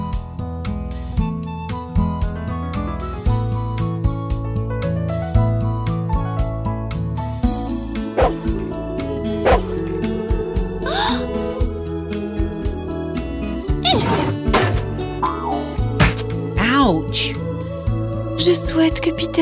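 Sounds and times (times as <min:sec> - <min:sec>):
steady music: 0:00.0 - 0:19.4
large Newfoundland dog barking: 0:08.2 - 0:08.4, 0:09.4 - 0:09.7
speech: 0:18.8 - 0:19.4.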